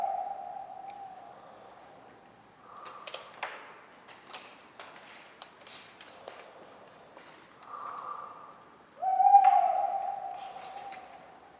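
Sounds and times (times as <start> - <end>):
tawny owl hooting on a cold autumn night in Ménigoute, France: 0.0 - 1.7, 7.7 - 11.5.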